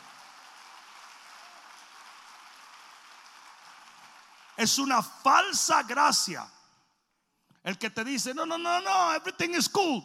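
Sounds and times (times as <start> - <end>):
audience applauding: 0.0 - 4.8
speech: 4.6 - 6.6, 7.6 - 10.0.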